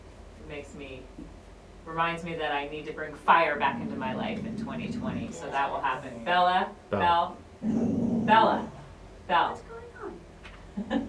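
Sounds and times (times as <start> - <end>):
speech: 0.5 - 9.7
female dog low rumbling growl: 3.4 - 9.0.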